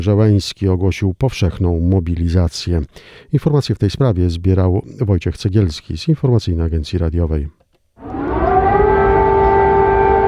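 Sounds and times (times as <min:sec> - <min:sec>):
speech: 0:00.0 - 0:07.6
air raid siren wailing over Kyiv: 0:08.0 - 0:10.2.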